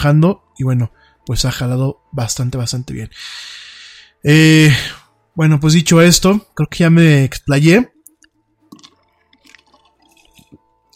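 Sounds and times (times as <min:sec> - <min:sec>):
speech: 0:00.0 - 0:03.6, 0:04.2 - 0:08.0
person sipping water: 0:08.0 - 0:10.9.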